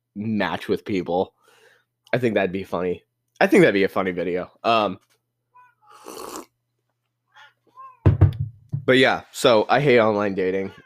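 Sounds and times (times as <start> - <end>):
speech: 0.2 - 1.4, 2.1 - 5.1, 8.8 - 10.8
domestic cat making short vocal sounds: 5.6 - 6.4.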